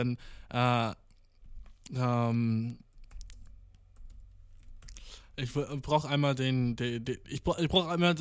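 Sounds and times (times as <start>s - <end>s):
speech: 0.0s - 1.0s, 1.9s - 2.8s, 5.4s - 8.1s
computer keyboard key clicks while typing a Google search: 2.9s - 5.0s.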